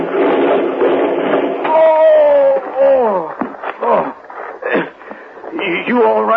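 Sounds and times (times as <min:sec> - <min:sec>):
loud rattling rumble: 0:00.0 - 0:04.4
vehicle crashing as it tips over after a wheel comes off: 0:00.0 - 0:05.0
clattering thuds and bangs of vehicle settling: 0:00.0 - 0:05.5.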